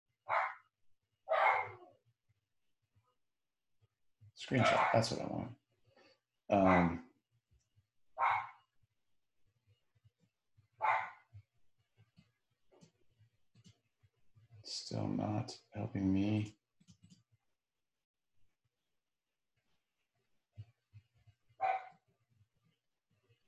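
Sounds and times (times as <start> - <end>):
dog barking: 0.3 - 0.6, 1.3 - 1.8, 4.6 - 5.0, 6.6 - 6.9, 8.2 - 8.6, 10.8 - 11.2, 21.6 - 22.0
speech: 4.4 - 5.6, 6.5 - 7.1, 14.7 - 16.6.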